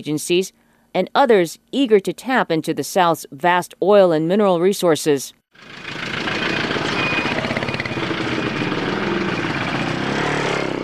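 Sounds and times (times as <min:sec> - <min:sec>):
speech: 0:00.0 - 0:05.9
four-wheel drive vehicles, motorbikes and trucks rumbling on dirt roads: 0:05.6 - 0:10.8.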